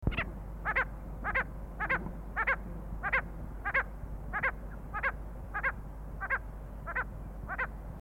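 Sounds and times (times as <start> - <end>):
Coracias naevius bird calls: 0.0 - 7.8.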